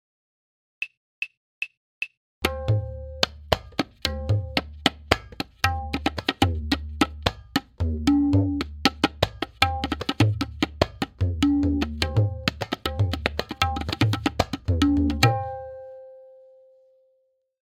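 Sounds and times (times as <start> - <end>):
tabla playing a tipalli gat: 2.4 - 16.0.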